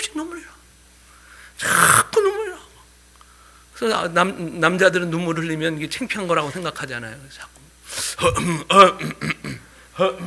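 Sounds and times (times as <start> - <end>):
speech: 0.1 - 0.6, 3.8 - 9.3, 10.0 - 10.2
man clearing his throat: 8.2 - 10.2.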